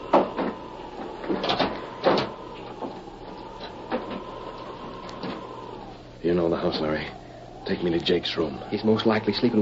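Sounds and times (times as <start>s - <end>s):
house door opening and closing: 0.0s - 5.9s
faint steady hum: 0.0s - 9.6s
speech: 6.2s - 9.6s.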